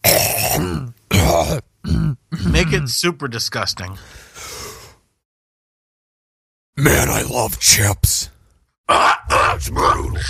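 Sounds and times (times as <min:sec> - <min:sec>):
loud rough throat clearing: 0:00.0 - 0:02.8
speech: 0:02.7 - 0:04.5, 0:06.8 - 0:08.3, 0:08.9 - 0:10.2.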